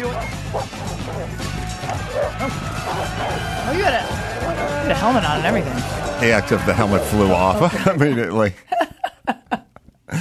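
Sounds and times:
dog barking and yipping in a park: 0.0 - 4.8
people's voices: 1.8 - 8.3
speech: 2.4 - 8.8
laughter: 2.4 - 10.1.

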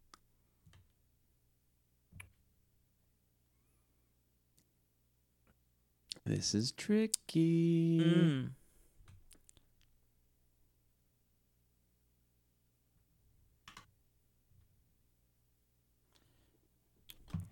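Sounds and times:
speech: 6.2 - 8.6
keyboard clicks of a player typing a quiz answer: 13.6 - 13.9.

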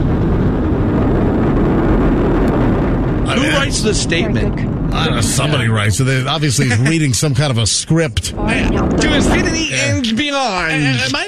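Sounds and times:
rocket engines and boosters roaring at launch: 0.0 - 11.2
speech: 3.8 - 11.2.

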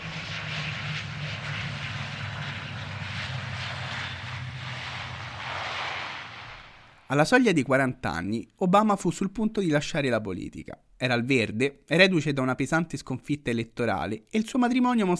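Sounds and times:
airplane engine droning in flight: 0.0 - 7.1
speech: 7.1 - 15.1.

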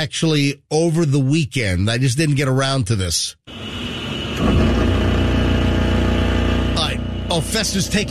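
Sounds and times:
speech: 0.0 - 3.8, 7.3 - 8.0
car engine whining with humming drone: 3.5 - 8.0.

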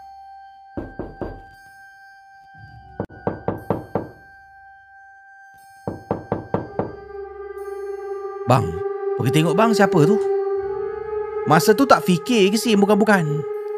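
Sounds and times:
firm knocking on a house door: 0.8 - 1.6, 3.0 - 4.2, 5.9 - 7.0
speech: 8.5 - 10.4, 11.4 - 13.5.

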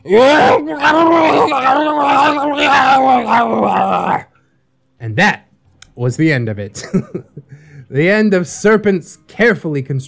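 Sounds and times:
person raging, blubbering scream: 0.0 - 4.3
speech: 0.0 - 4.3, 5.0 - 5.4, 6.0 - 10.0.

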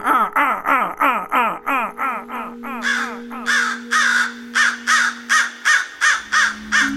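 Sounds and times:
person mimicking a crow's harsh scold call: 0.0 - 6.9.

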